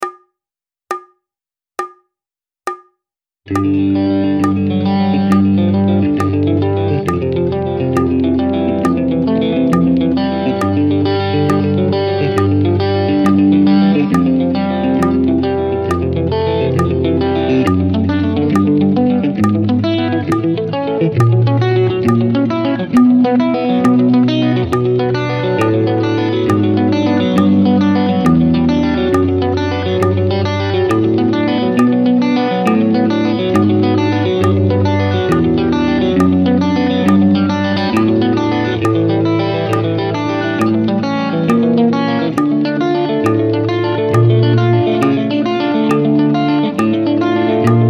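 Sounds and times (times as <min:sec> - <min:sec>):
crosspicked guitar etude at 68 bpm: 0:03.5 - 0:47.8.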